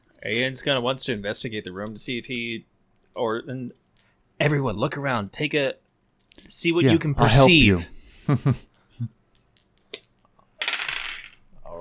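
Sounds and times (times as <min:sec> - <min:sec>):
speech: 0:00.2 - 0:03.8, 0:04.4 - 0:05.8, 0:06.4 - 0:09.2
dice rattling and clattering across a table: 0:09.3 - 0:11.5.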